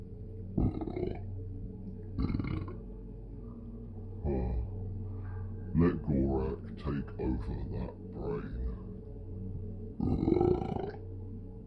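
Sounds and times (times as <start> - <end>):
steady low hum: 0.0 - 11.6
loud guttural burps: 0.6 - 1.2, 2.2 - 2.8, 10.0 - 11.0.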